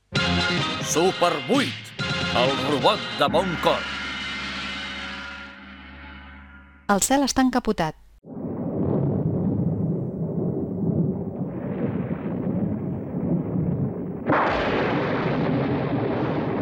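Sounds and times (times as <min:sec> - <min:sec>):
speech: 0:00.5 - 0:04.0, 0:06.9 - 0:08.4
thunder rumbling during a storm: 0:08.3 - 0:16.6.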